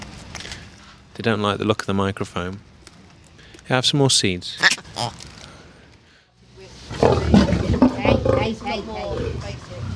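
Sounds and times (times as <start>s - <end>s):
speech: 1.2s - 2.7s, 3.7s - 5.3s, 8.5s - 9.3s
lion growling while eating raw meat: 6.9s - 9.9s.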